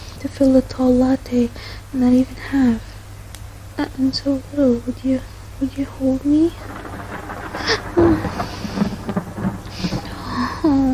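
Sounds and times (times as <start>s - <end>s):
speech: 0.2s - 2.9s, 3.8s - 6.8s
falling rain: 3.9s - 10.9s
low rolling thunder rumbling: 5.7s - 10.9s.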